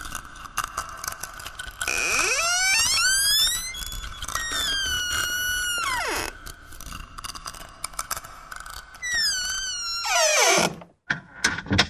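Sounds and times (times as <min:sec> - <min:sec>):
door creaking open with squeaky groans: 0:01.8 - 0:06.4, 0:09.0 - 0:11.8.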